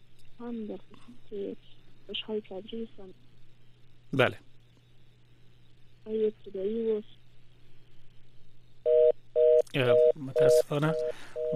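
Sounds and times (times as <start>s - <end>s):
faint low telephone line hum: 0.0s - 11.5s
speech: 0.4s - 3.3s, 4.1s - 4.5s, 6.0s - 7.2s, 9.7s - 11.5s
telephone line beeps after a call drops: 8.9s - 11.5s.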